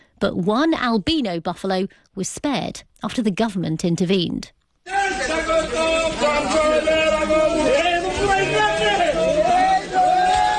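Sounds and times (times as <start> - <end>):
speech: 0.2 - 7.7
large crowd cheering and shouting: 4.8 - 10.5.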